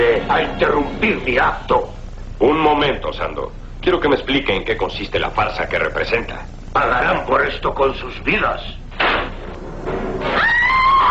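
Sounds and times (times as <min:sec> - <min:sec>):
speech: 0:00.3 - 0:09.1
girl screaming in grave danger: 0:10.3 - 0:11.0.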